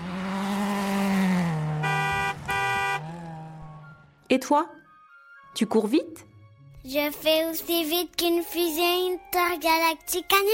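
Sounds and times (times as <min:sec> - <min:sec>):
fast car on a highway roaring past: 0:00.0 - 0:04.2
car horn honking: 0:01.7 - 0:03.2
speech: 0:04.3 - 0:04.8, 0:05.6 - 0:10.5.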